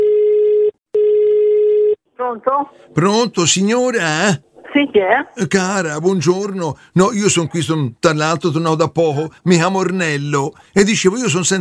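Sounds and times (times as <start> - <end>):
telephone line tone while placing a call: 0.0 - 2.0
speech: 2.4 - 11.5.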